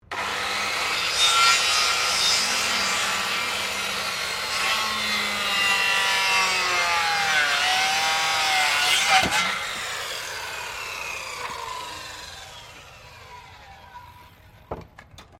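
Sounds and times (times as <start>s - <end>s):
Makita circular saw cutting wood under heavy load: 0.0s - 14.7s.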